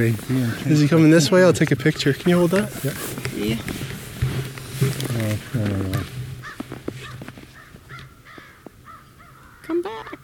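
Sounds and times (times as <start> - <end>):
speech: 0.0 - 3.8, 5.2 - 6.2
crows cawing outdoors while chasing a hawk: 5.0 - 10.2.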